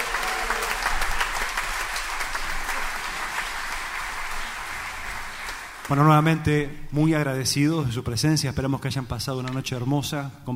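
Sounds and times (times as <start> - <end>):
audience applause: 0.0 - 6.3
speech: 5.9 - 10.5.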